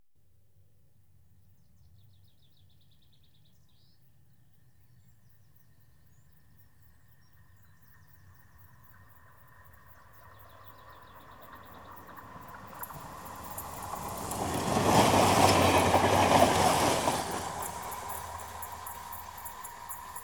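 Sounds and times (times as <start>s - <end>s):
single diesel train passing: 10.5s - 20.2s.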